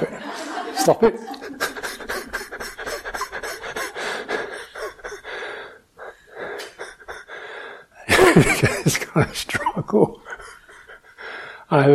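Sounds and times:
laughter: 0.0 - 5.6, 8.1 - 11.3
speech: 0.8 - 1.4, 8.4 - 10.2, 11.7 - 11.9
heavy rasping breathing and deep gasps: 1.3 - 8.1, 10.3 - 11.7.

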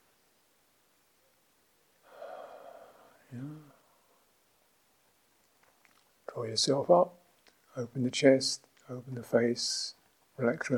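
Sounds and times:
brief voiced sigh: 2.0 - 4.2
long breathy exhale: 2.0 - 4.2
speech: 3.3 - 3.7, 6.4 - 7.2, 7.8 - 10.7.

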